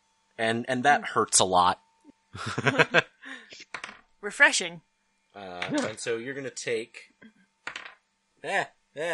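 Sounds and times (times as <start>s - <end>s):
speech: 0.4s - 7.4s, 8.4s - 9.1s
laughter: 2.4s - 3.1s
dice tumbling onto a tabletop in a tabletop game: 3.7s - 4.1s, 7.6s - 8.0s.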